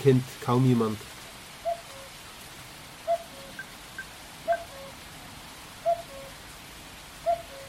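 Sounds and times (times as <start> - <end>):
speech: 0.0 - 1.1
steady hiss: 0.0 - 7.6
male common cuckoo calling two-note falling cu-coo: 1.6 - 2.2, 3.0 - 5.0, 5.8 - 6.5, 7.2 - 7.6.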